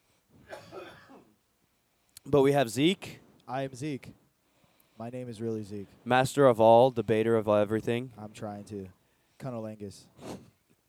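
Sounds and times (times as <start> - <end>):
person coughing: 0.4 - 1.3
speech: 2.3 - 4.2, 5.0 - 10.5.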